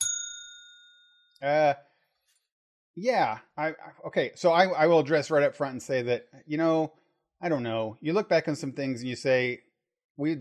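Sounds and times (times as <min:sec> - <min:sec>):
bell ding: 0:00.0 - 0:01.4
speech: 0:01.4 - 0:01.9, 0:03.0 - 0:10.3.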